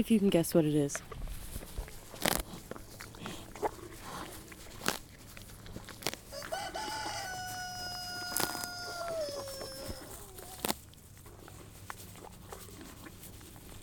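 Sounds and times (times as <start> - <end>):
speech: 0.0 - 1.2
horse crunching and tearing at grass: 0.0 - 13.8
rooster-like bird crowing: 6.3 - 10.6.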